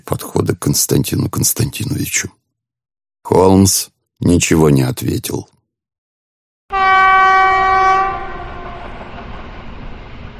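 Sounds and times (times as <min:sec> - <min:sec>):
speech: 0:00.1 - 0:02.4, 0:03.3 - 0:05.6
passenger train horn blast at a railway station: 0:06.7 - 0:09.0.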